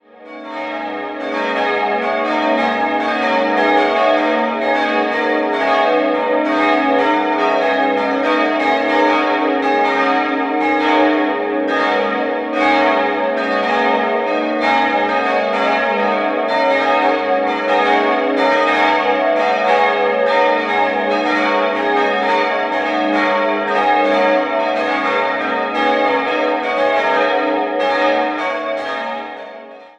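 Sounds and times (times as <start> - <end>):
bells of Nikodemus church in Nürnberg Röthenbach ringing: 0.0 - 29.9.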